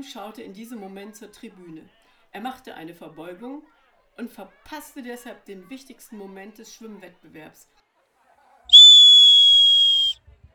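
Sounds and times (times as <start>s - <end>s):
speech: 0.0s - 7.8s
referee's whistle blast signaling the start of a swimming race: 8.7s - 10.1s.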